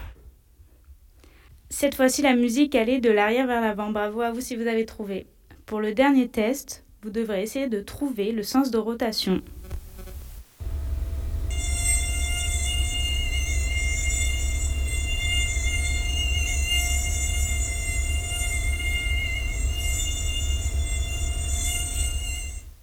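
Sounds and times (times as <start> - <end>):
speech: 1.8 - 9.6
mosquito buzzing: 9.4 - 22.7.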